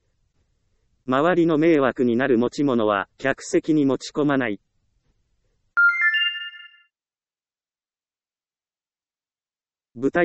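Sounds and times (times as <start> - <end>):
speech: 1.1 - 4.7, 10.0 - 10.2
mobile phone ringtone: 5.8 - 6.9.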